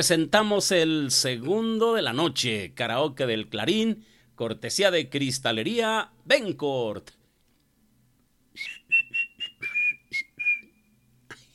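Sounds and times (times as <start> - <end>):
speech: 0.0 - 7.2, 8.6 - 8.8
short whistled tune: 8.6 - 11.2.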